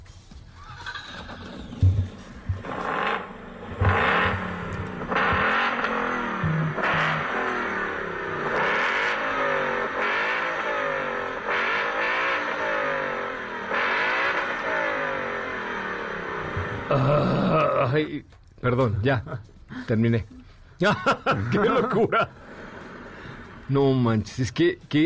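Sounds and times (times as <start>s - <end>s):
V8 engine with quad exhaust revving: 1.2s - 17.7s, 22.2s - 24.0s
speech: 18.0s - 22.4s, 23.7s - 25.0s
laughter: 20.8s - 22.4s.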